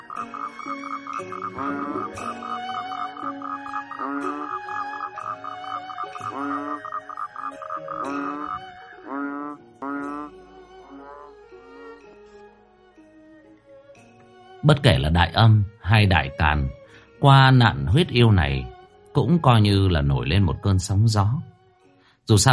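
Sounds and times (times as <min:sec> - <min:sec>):
frogs croaking in a dense chorus: 0:00.0 - 0:12.9
speech: 0:00.2 - 0:02.9, 0:14.7 - 0:21.5, 0:22.3 - 0:22.5.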